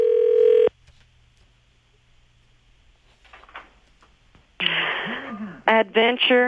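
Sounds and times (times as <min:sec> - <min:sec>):
loud electronic telephone tone: 0:00.0 - 0:00.7
speech: 0:05.7 - 0:06.4.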